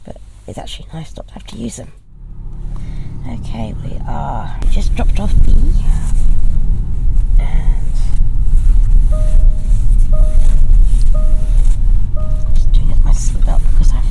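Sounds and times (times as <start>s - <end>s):
car engine rumbling in motion: 0.0s - 14.0s
speech: 0.5s - 2.0s, 3.2s - 6.2s, 7.4s - 8.0s
car turn indicator clicking: 8.2s - 12.9s.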